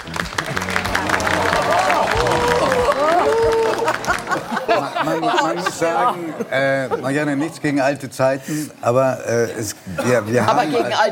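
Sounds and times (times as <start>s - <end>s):
crowd applause: 0.0s - 5.7s
lively voices: 0.0s - 11.1s
laughter: 0.1s - 7.6s
whoops: 0.5s - 4.2s
speech: 5.1s - 11.1s.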